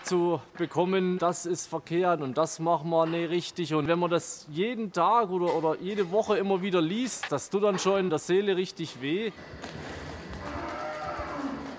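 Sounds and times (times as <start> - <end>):
steady noise in a barn: 0.0 - 11.7
speech: 0.1 - 10.0
Fleckvieh dairy cow mooing in a barn: 10.4 - 11.7.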